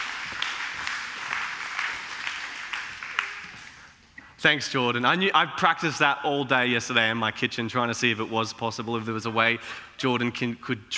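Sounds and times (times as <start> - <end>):
sharp individual claps: 0.0 - 3.9
crowd applauding: 0.0 - 4.0
speech: 4.4 - 10.9.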